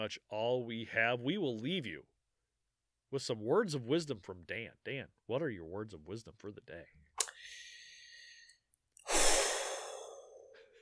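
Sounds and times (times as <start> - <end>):
speech: 0.0 - 2.1, 3.1 - 7.6
long exhaled sigh: 7.4 - 10.8.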